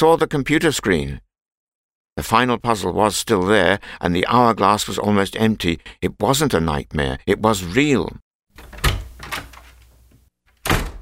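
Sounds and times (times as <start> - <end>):
speech: 0.0 - 1.3, 2.2 - 8.8
office door latch and handle clunks: 8.6 - 9.7, 10.5 - 11.0
office door swinging with a swishing thud: 8.6 - 11.0.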